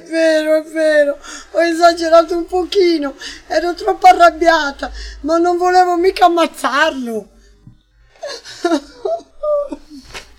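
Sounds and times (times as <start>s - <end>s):
speech: 0.1s - 7.3s, 8.3s - 9.8s
woman crying with high wavering whimpers and sobbing moans: 8.2s - 10.1s.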